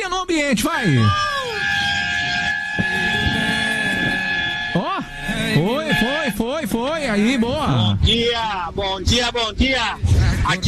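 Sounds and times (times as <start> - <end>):
speech: 0.2 - 1.3, 6.7 - 10.6
vehicle horn blaring: 1.4 - 8.2.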